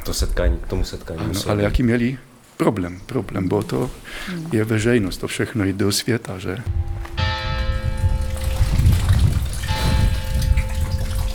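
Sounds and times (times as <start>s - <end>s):
speech: 0.0s - 7.0s
sustained ringing bell tones: 6.7s - 11.3s
water gushing from a spring: 7.7s - 11.3s.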